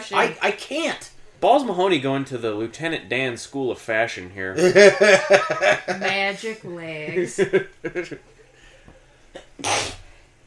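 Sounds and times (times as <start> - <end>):
speech: 0.1 - 8.3
laughter: 4.6 - 8.2
person sneezing: 9.6 - 10.1.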